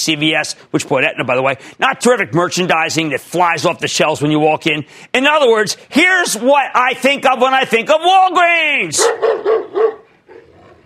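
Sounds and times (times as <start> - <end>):
speech: 0.0 - 10.0
dog barking: 9.0 - 10.8.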